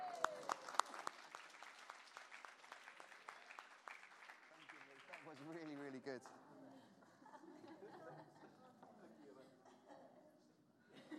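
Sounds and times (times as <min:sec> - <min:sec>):
small audience clapping: 0:00.0 - 0:06.4
speech: 0:05.3 - 0:06.5
laughter: 0:07.0 - 0:10.2.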